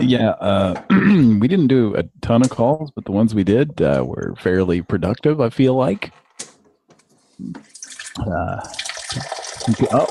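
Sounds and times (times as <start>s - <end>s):
speech: 0.0s - 6.2s, 7.4s - 10.0s
water being poured into a glass: 7.7s - 10.0s.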